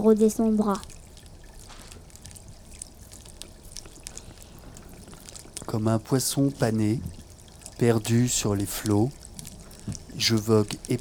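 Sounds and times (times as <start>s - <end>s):
speech: 0.0s - 1.0s, 5.7s - 7.2s, 7.8s - 9.2s, 9.9s - 10.9s
water pouring and trickling: 0.0s - 10.9s.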